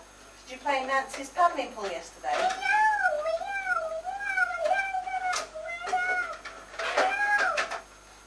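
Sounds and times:
speech: 0.6s - 2.7s
cat meowing in long wavering drawn-out cries: 2.6s - 7.7s.

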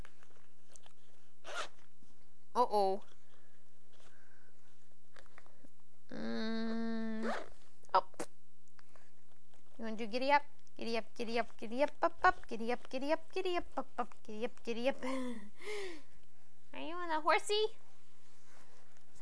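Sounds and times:
steady low hum: 0.0s - 19.1s
zipper pulled back and forth: 0.8s - 1.9s, 7.0s - 7.6s
speech: 2.6s - 3.1s, 10.0s - 16.0s, 17.1s - 17.8s.

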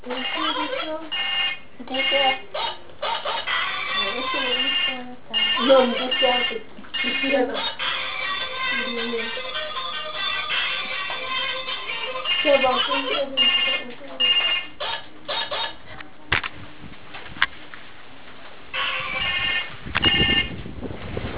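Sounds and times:
phone ringtone playing a repeating electronic melody: 0.1s - 2.4s, 3.0s - 15.8s, 18.8s - 20.5s.

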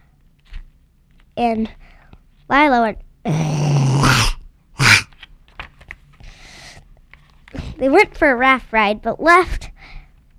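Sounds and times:
speech: 1.4s - 4.3s, 7.8s - 9.7s
soft breaths: 1.6s - 2.5s, 6.2s - 7.9s, 9.6s - 10.3s
voice imitating an animal growl: 3.3s - 5.1s.

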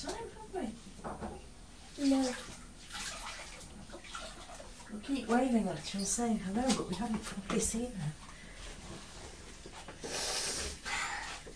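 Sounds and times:
speech: 2.0s - 2.6s, 5.3s - 8.2s
breathy sniffing: 10.0s - 11.5s.

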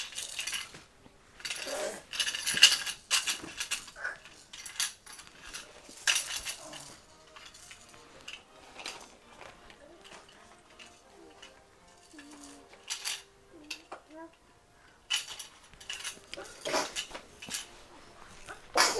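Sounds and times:
household clinks and clatter: 0.0s - 18.9s
person sneezing: 16.4s - 17.0s, 18.7s - 18.9s.

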